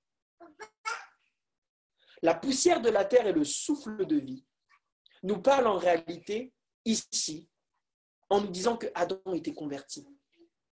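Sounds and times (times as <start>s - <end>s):
baby girl babbling: 0.4s - 1.2s
speech: 2.2s - 4.5s, 5.2s - 7.5s, 8.3s - 10.2s.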